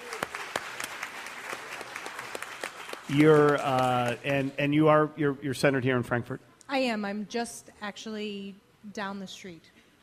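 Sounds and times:
audience applause: 0.0s - 4.8s
speech: 3.1s - 10.0s.

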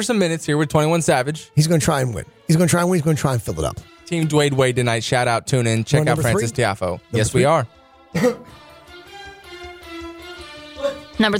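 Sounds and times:
speech: 0.0s - 8.6s, 11.2s - 11.3s
person coughing: 8.1s - 8.6s, 10.8s - 11.2s.

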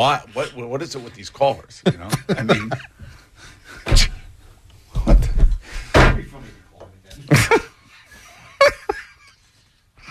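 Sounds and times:
speech: 0.0s - 3.0s
laughter: 1.8s - 3.3s, 7.2s - 9.6s
studio door banging open: 5.0s - 6.4s.

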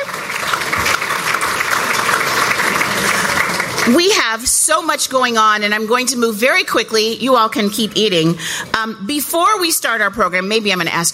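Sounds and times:
room full of people applauding: 0.0s - 4.1s
speech: 3.9s - 11.1s.

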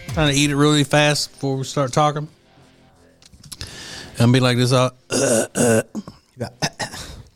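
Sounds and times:
speech: 0.2s - 2.4s, 4.2s - 6.7s
throat clearing from a crumb stuck in the throat: 5.1s - 7.3s.

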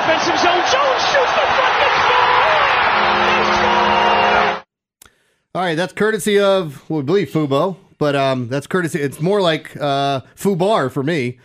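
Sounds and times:
hockey arena crowd roaring: 0.0s - 4.6s
speech: 5.6s - 11.4s.

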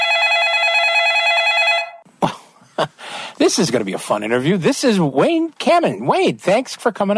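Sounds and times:
telephone bell ringing: 0.0s - 2.0s
speech: 2.8s - 7.1s.

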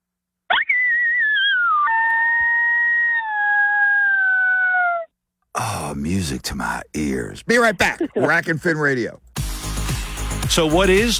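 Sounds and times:
howl blown on a predator call: 0.5s - 5.1s
speech: 6.1s - 9.4s, 10.5s - 11.1s.

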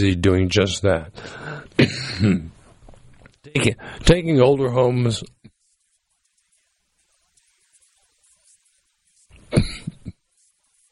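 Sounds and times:
speech: 0.0s - 2.6s, 3.5s - 5.4s
man coughing: 1.8s - 2.5s, 9.5s - 10.2s.

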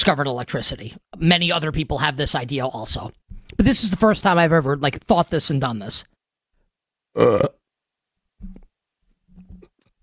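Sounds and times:
speech: 0.0s - 6.1s, 7.2s - 7.6s
low belching sounds: 7.2s - 7.6s
person burping loudly: 7.2s - 7.6s.

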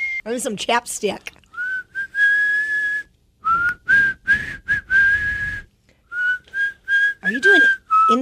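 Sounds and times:
person whistling a short tune: 0.0s - 0.2s, 1.6s - 8.1s
speech: 0.2s - 1.4s.

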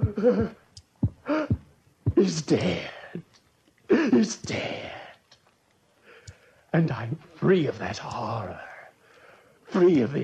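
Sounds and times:
deep heartbeat thuds of a heart beating its last beats: 0.0s - 2.4s
speech: 0.2s - 0.6s, 2.2s - 3.0s, 3.9s - 5.0s, 6.8s - 8.7s, 9.7s - 10.2s.

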